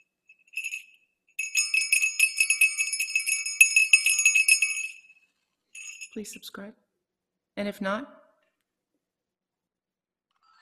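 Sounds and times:
small high-pitched bell ringing: 0.0s - 6.6s
speech: 6.2s - 6.9s, 7.6s - 8.2s.

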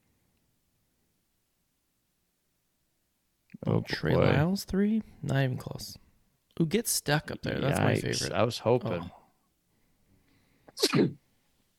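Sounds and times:
speech: 3.6s - 6.0s, 6.6s - 9.2s, 10.8s - 11.2s
sneeze: 10.7s - 11.2s.

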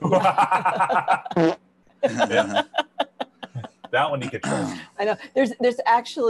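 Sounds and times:
laughter: 0.0s - 1.4s, 2.0s - 4.4s
speech: 0.0s - 2.9s, 4.0s - 6.2s
fart sound effect: 1.4s - 1.6s.

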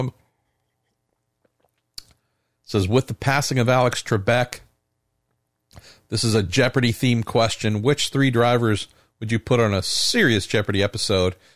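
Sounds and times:
speech: 0.0s - 0.2s, 2.7s - 4.6s, 5.7s - 11.5s
person sipping coffee with wet mouth noises: 0.3s - 2.2s
slurp of coffee: 0.4s - 2.2s.

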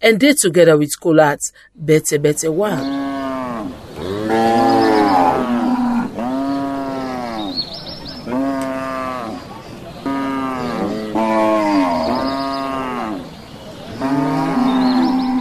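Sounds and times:
speech: 0.0s - 4.8s
cattle mooing: 2.8s - 7.6s, 8.2s - 13.3s, 14.0s - 15.3s.

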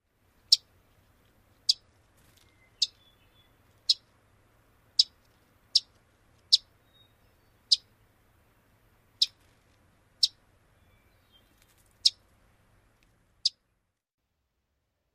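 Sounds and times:
Wilson's warbler sharp kissing chip call notes: 0.5s - 0.7s, 2.4s - 4.1s, 5.0s - 5.9s, 6.5s - 8.0s, 9.2s - 9.4s, 10.2s - 12.2s.

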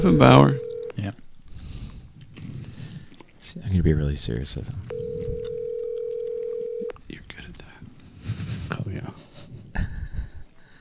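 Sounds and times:
steady ringback tone on a phone line: 0.0s - 1.0s, 4.9s - 7.0s
speech: 0.0s - 1.2s, 3.5s - 5.0s.

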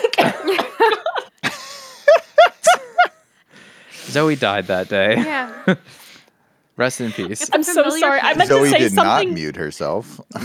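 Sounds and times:
person coughing after choking on water: 0.0s - 1.1s
laughter: 0.0s - 3.3s, 6.9s - 9.4s
speech: 4.1s - 6.1s, 6.8s - 10.4s.

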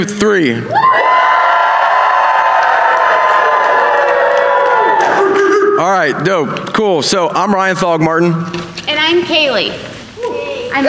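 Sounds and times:
speech: 0.0s - 1.3s, 5.8s - 9.9s
large live audience screaming: 0.7s - 6.2s.

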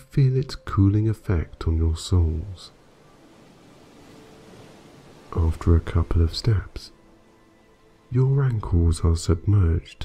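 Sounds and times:
speech: 0.2s - 2.8s, 5.3s - 7.0s, 8.1s - 10.0s
ocean waves washing ashore onto damp sand: 1.2s - 8.5s.

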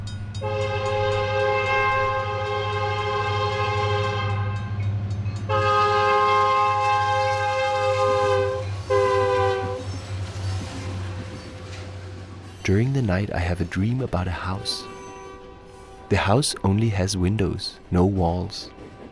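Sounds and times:
freight train rumbling past through a motel backyard: 0.0s - 19.1s
multi-tone freight train horn blasts: 0.4s - 4.8s, 5.5s - 10.0s, 14.3s - 16.5s
speech: 12.7s - 14.9s, 16.1s - 18.8s.

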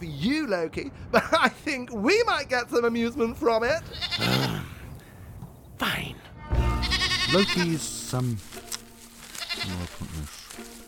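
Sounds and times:
speech: 0.0s - 4.6s, 7.3s - 8.5s, 9.7s - 10.4s
goat bleating: 3.8s - 4.6s, 6.6s - 7.8s, 9.4s - 10.1s.

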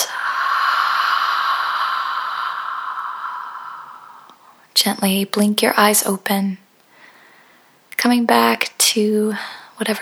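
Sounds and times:
deep breath exhaled during a guided breathing exercise: 0.0s - 4.6s
speech: 4.8s - 6.6s, 8.1s - 9.9s.

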